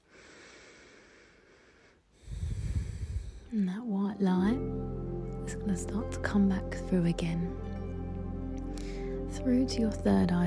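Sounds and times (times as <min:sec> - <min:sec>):
slow deep breathing during a guided meditation: 0:00.0 - 0:03.6, 0:08.6 - 0:09.3
speech: 0:03.5 - 0:04.8, 0:05.5 - 0:07.7, 0:09.4 - 0:10.4.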